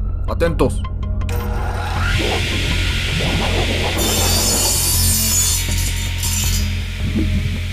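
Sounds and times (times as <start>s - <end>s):
speech: 0.3s - 1.4s
chainsaw cutting into car parts: 1.4s - 7.1s.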